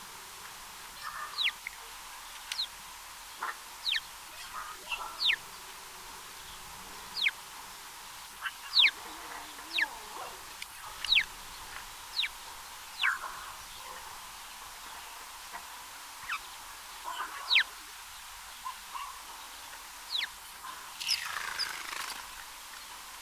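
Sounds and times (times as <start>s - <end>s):
faint background hiss: 0.0s - 23.2s
house sparrow chirps, Passer domesticus: 1.0s - 1.7s, 3.4s - 5.7s, 6.4s - 7.4s, 8.4s - 14.2s, 16.2s - 17.7s, 18.6s - 22.4s.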